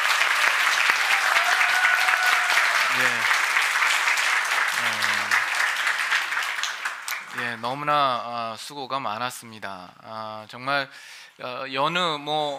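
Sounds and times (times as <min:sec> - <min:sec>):
large church audience applauding a choir: 0:00.0 - 0:07.7
speech: 0:07.6 - 0:12.5.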